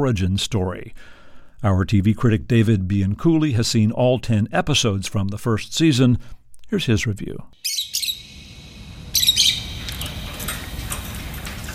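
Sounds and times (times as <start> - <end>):
speech: 0.0 - 7.8
caged birds chirping: 7.6 - 11.4
steady low hum: 7.6 - 11.7.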